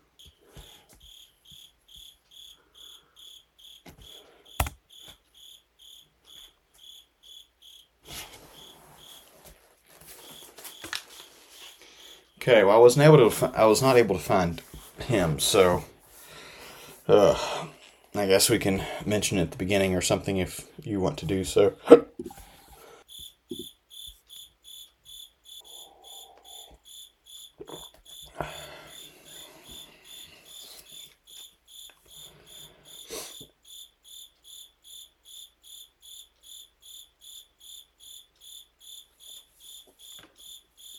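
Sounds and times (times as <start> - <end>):
cricket chirping: 0.0 - 9.3, 10.1 - 15.6, 23.0 - 40.9
rustling and shuffling: 8.0 - 12.3, 13.0 - 17.1
speech: 12.5 - 15.9, 17.1 - 17.6, 18.2 - 22.0.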